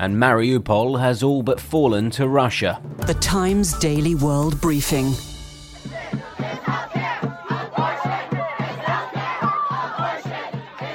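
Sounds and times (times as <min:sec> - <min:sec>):
speech: 0:00.0 - 0:06.0
steady rhythmic drumbeat: 0:01.5 - 0:10.9
large outdoor protest crowd shouting and chanting together: 0:05.7 - 0:10.9.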